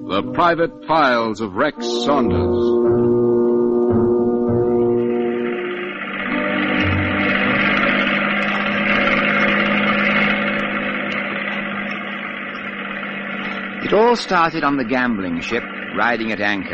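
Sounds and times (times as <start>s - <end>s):
speech: 0.1s - 2.7s, 13.9s - 16.7s
speedboat engine throttling down beside an offshore gambling ship: 2.7s - 16.7s.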